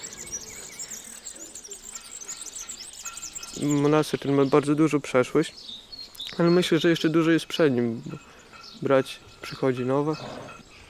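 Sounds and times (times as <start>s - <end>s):
several birds chirping and singing in a morning chorus: 0.0s - 10.8s
speech: 3.6s - 5.8s, 6.4s - 10.6s.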